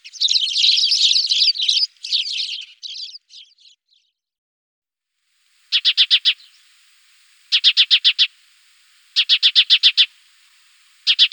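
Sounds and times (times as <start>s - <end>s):
Spanish sparrows chattering together: 0.0s - 4.1s, 5.7s - 6.8s, 7.4s - 8.3s, 9.2s - 10.1s, 11.0s - 11.3s.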